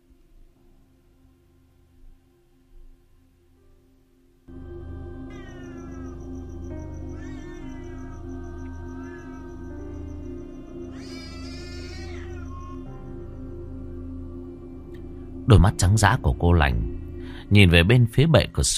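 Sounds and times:
low hum: 0.0s - 18.7s
black cat yowling fiercely: 5.3s - 6.3s, 7.1s - 9.6s, 10.9s - 13.2s
speech: 15.5s - 16.9s, 17.5s - 18.7s.

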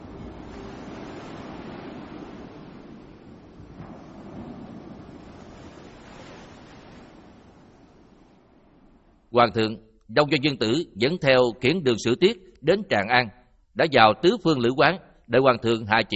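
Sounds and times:
surf-like swells: 0.0s - 9.3s
strong sea wind blowing outside a ship's cabin: 0.0s - 9.4s
speech: 9.4s - 16.1s.

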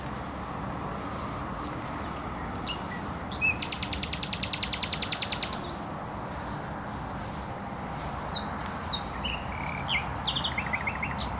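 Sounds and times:
constant low traffic hum from a noisy motorway: 0.0s - 11.3s
nightingale singing in bushes in Bródno-Podgrodzie, Warsaw, Poland: 1.3s - 5.9s, 8.1s - 11.3s.

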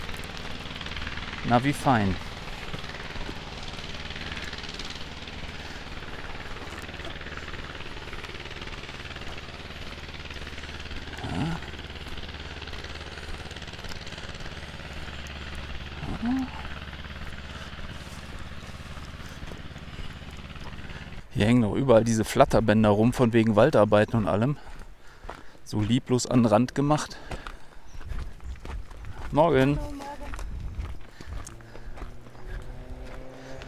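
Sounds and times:
tractor driving along a street, low chugging engine rumble: 0.0s - 33.6s
speech: 1.4s - 2.3s, 21.4s - 24.7s, 25.7s - 27.4s, 29.3s - 30.0s.

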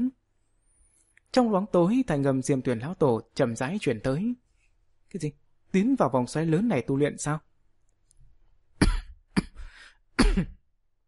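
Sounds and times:
speech: 1.3s - 4.4s, 5.1s - 7.5s, 10.4s - 10.6s
harsh coughs from a person reading aloud: 8.8s - 10.6s.

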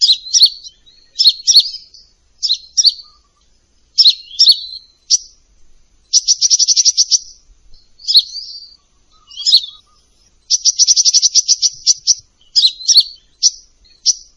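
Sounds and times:
olive-backed sunbird song with trills and chirps: 0.0s - 14.3s.

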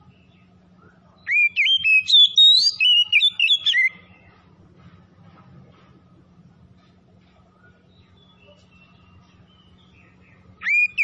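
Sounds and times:
Oriental magpie-robin in full song: 0.0s - 4.4s, 7.6s - 11.0s.

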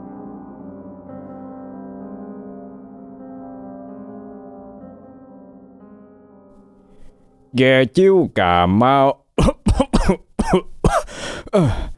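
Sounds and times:
speech: 7.5s - 9.5s, 10.1s - 10.7s, 11.5s - 11.9s
elderly man about fifty coughing in a harsh fit: 9.4s - 11.9s.

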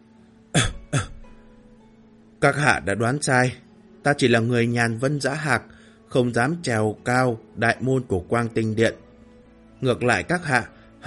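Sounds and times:
man coughing lightly: 0.6s - 1.2s
speech: 2.4s - 9.0s, 9.8s - 11.0s.

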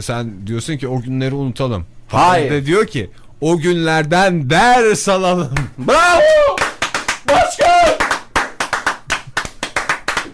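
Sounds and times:
speech: 0.0s - 6.6s
morning show audience clapping in a standing ovation: 5.6s - 10.3s.

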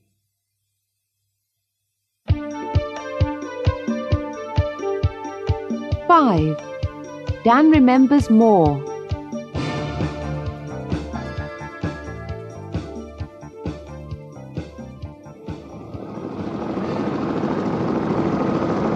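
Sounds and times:
rhythmic tonal beats: 2.3s - 17.4s
speech: 6.1s - 6.7s, 7.4s - 8.9s
helicopter engine starting and taking off: 15.4s - 18.9s.

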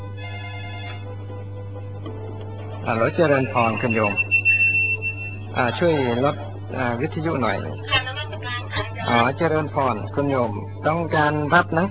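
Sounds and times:
telephone ringing for an incoming call: 0.2s - 1.1s, 2.9s - 6.3s
speech: 2.8s - 4.3s, 5.6s - 8.0s, 9.0s - 11.8s.

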